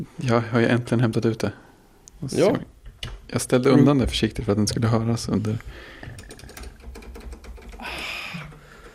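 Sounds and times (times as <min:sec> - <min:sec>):
speech: 0:00.0 - 0:01.6, 0:02.2 - 0:06.2
typing on an old computer keyboard connected to a Mac: 0:06.0 - 0:08.9.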